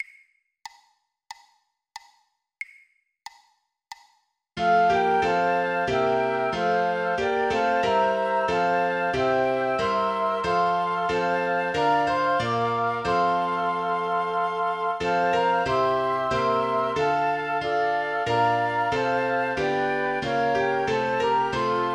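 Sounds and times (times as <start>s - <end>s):
flute: 4.6s - 21.9s
piano: 4.6s - 21.9s.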